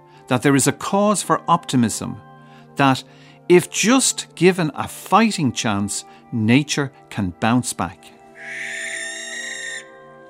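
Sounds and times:
speech: 0.3 - 8.8
barn owl screech: 8.4 - 10.0.

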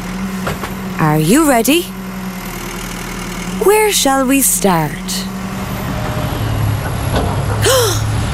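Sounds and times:
dump truck's heavy engine rumbling: 0.0 - 8.3
speech: 1.0 - 2.0, 3.6 - 5.3.

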